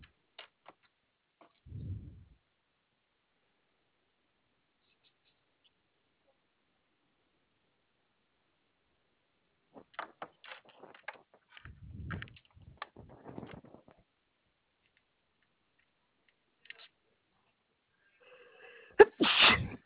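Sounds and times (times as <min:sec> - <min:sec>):
light clicking and rustling: 0:09.8 - 0:14.0, 0:14.8 - 0:17.0
person sneezing: 0:19.0 - 0:19.8.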